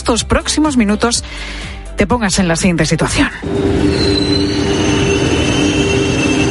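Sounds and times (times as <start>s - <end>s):
speech: 0.1s - 5.0s
train rumbling at a railway station in Valencia: 3.3s - 6.4s
metallic train wheel squeals: 3.4s - 6.4s.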